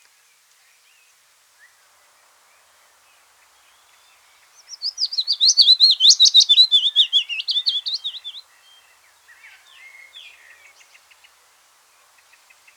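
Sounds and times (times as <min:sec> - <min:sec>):
willow warbler singing a liquid descending cascade of whistled notes: 0:04.7 - 0:08.4.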